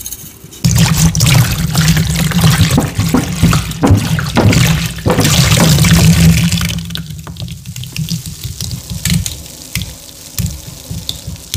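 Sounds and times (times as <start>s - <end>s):
low running hum: 0.6s - 11.5s
liquid dripping and pattering: 0.7s - 11.5s
liquid pouring over chalk: 0.7s - 11.5s.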